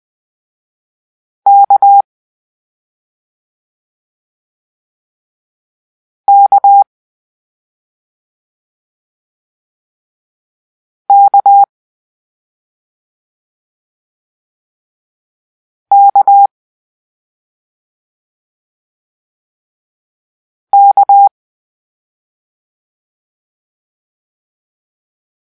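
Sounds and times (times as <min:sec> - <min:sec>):
morse code letter K beeps: 0:01.5 - 0:02.0, 0:06.3 - 0:06.8, 0:11.1 - 0:11.7, 0:15.9 - 0:16.5, 0:20.8 - 0:21.3.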